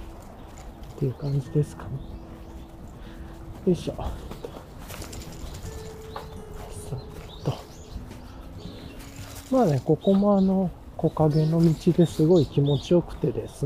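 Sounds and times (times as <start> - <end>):
faint footsteps or movement: 0.0 - 10.3
faint outdoor birdsong: 0.0 - 13.6
speech: 1.0 - 2.2, 3.6 - 4.4, 9.5 - 13.6.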